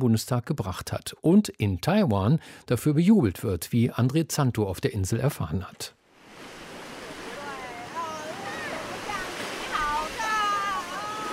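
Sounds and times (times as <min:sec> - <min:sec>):
speech: 0:00.0 - 0:06.0
surf breaking on a white sand beach in Taiwan: 0:06.1 - 0:11.3
small children calling and squealing in high voices: 0:07.3 - 0:11.3.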